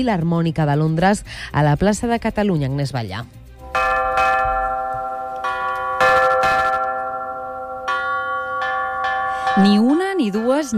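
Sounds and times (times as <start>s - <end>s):
speech: 0.0s - 3.4s, 9.6s - 10.7s
church bells ringing: 3.7s - 10.7s.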